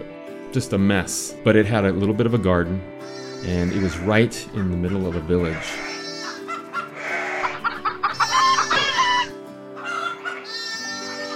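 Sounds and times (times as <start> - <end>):
speech: 0.5 - 6.0
chickens clucking in a village: 3.8 - 10.7
rooster crowing in a village: 6.7 - 10.9.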